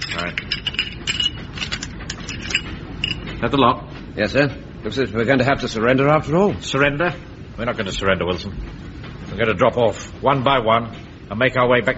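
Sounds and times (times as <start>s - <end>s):
rifle bolts clicking and rattling as they are collected and thrown out of a door: 0.0s - 3.4s
speech: 3.4s - 11.9s.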